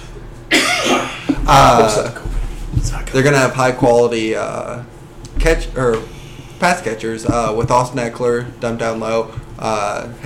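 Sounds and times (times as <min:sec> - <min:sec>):
person coughing: 0:00.5 - 0:02.0
speech: 0:01.5 - 0:10.2.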